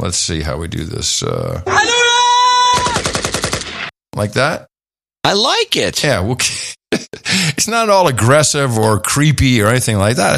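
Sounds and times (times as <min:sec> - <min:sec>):
speech: 0:00.0 - 0:02.4, 0:04.1 - 0:10.3
rapid automatic gunfire: 0:02.8 - 0:03.9
laughter: 0:06.6 - 0:07.6.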